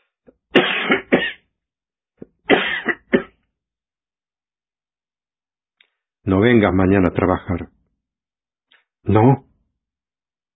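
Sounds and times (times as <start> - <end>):
harsh coughing: 0.5 - 1.5, 2.4 - 3.4
speech: 6.4 - 7.8, 9.0 - 9.5.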